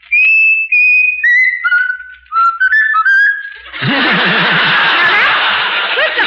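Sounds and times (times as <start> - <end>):
person whistling a melody: 0.0 - 3.6
loud, noisy laughter: 3.6 - 6.2.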